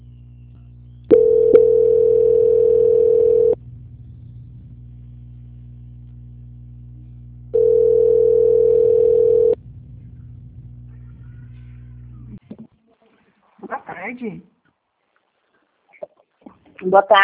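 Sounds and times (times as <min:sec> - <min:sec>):
telephone buzzing tones during call transfer: 0:01.1 - 0:03.6, 0:07.6 - 0:09.6
speech: 0:14.2 - 0:14.5, 0:16.9 - 0:17.2.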